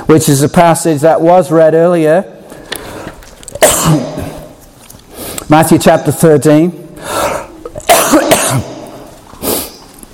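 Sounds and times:
speech: 0.1s - 2.4s, 3.9s - 4.3s, 5.5s - 7.2s, 8.5s - 8.7s
person coughing harshly: 3.6s - 4.5s, 7.3s - 9.0s.

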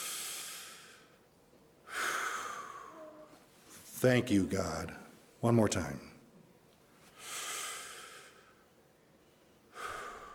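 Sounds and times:
slow breathing in and out during a worship service: 0.0s - 3.8s, 7.0s - 10.3s
speech: 4.0s - 6.1s.

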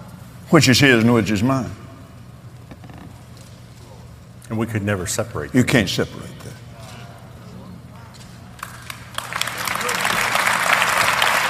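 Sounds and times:
speech: 0.5s - 1.8s, 4.5s - 6.6s
audience applauding: 8.6s - 11.4s.

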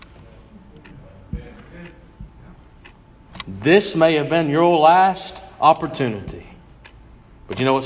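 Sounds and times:
clock ticking: 0.7s - 4.2s, 6.7s - 7.1s
speech: 3.5s - 6.5s, 7.5s - 7.8s.

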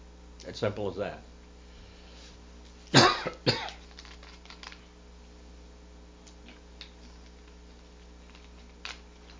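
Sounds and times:
steady low hum: 0.0s - 9.3s
speech: 0.4s - 1.3s
coughing: 2.9s - 3.8s.

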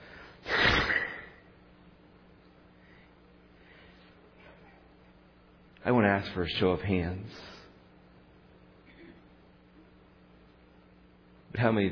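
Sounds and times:
snort of disgust: 0.4s - 1.4s
speech: 5.8s - 7.6s, 11.6s - 11.9s.

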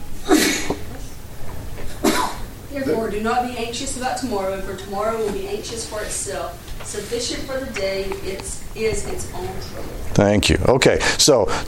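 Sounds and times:
sneezes: 0.2s - 0.8s, 1.9s - 2.5s
speech: 2.8s - 11.6s.

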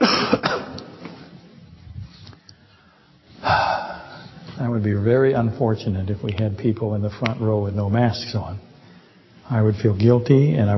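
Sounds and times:
person coughing: 0.0s - 0.8s
speech: 4.6s - 8.7s, 9.5s - 10.7s.

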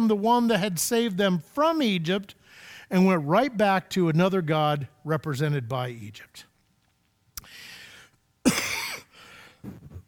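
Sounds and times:
speech: 0.1s - 6.5s
man clearing throat: 8.4s - 10.0s
man coughing: 8.4s - 10.0s.

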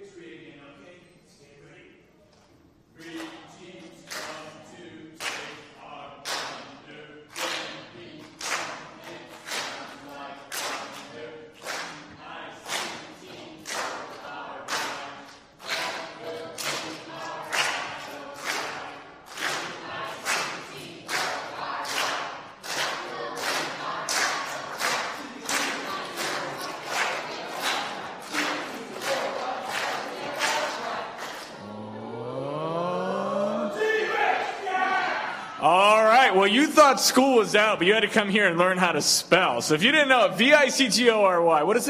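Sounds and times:
loud claps or stomps in a steady beat: 6.2s - 6.7s, 7.3s - 7.8s, 8.4s - 14.1s, 14.7s - 31.5s
team crowd cheering in unison: 15.6s - 37.4s
speech: 36.7s - 41.8s.

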